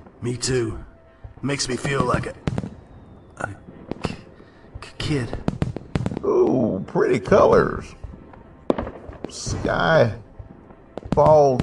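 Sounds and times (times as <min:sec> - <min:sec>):
speech: 0:00.2 - 0:02.6, 0:03.4 - 0:03.7, 0:05.1 - 0:05.6, 0:06.3 - 0:08.0, 0:09.3 - 0:10.2, 0:11.2 - 0:11.6
fireworks exploding: 0:01.6 - 0:11.6.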